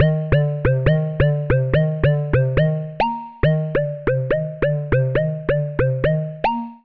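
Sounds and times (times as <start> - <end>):
lead melody in C minor at 140 bpm: 0.0 - 6.8.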